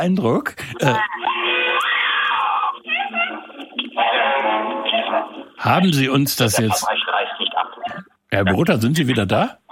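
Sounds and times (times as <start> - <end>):
speech: 0.0 - 1.6, 5.1 - 7.0, 8.3 - 9.6
loud sustained scream with wavering pitch in a horror clip: 0.8 - 4.5.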